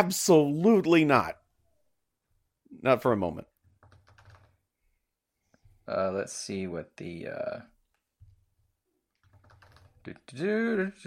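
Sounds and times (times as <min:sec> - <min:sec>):
speech: 0:00.0 - 0:01.4, 0:02.8 - 0:03.5, 0:05.9 - 0:07.7, 0:10.0 - 0:11.0
typing on a computer keyboard: 0:03.6 - 0:04.6, 0:09.1 - 0:10.1.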